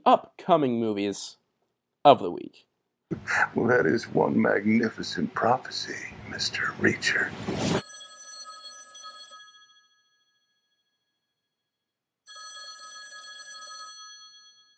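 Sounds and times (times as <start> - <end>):
speech: 0.0 - 1.4, 2.0 - 7.8
old-style telephone bell ringing: 7.8 - 11.0, 12.2 - 14.7.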